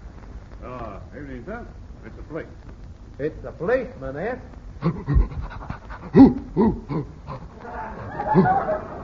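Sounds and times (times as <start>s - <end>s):
speech: 1.1s - 7.2s, 8.3s - 8.6s
large dog rough breathy panting: 4.8s - 8.2s
laughter: 7.5s - 9.0s.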